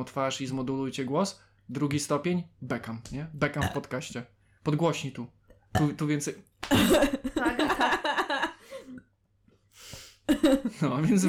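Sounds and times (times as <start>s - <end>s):
speech: 0.0s - 8.2s, 10.3s - 11.2s
throaty burp: 3.6s - 3.9s, 5.8s - 6.0s
laughter: 6.7s - 8.6s, 10.3s - 11.2s.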